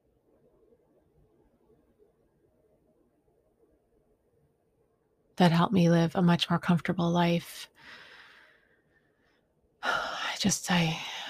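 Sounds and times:
speech: 5.4 - 8.0, 10.4 - 11.1
deep breath: 7.8 - 9.5.

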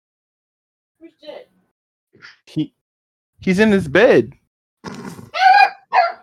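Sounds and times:
speech: 2.2 - 2.8, 3.4 - 5.0
dog barking: 5.3 - 6.2.

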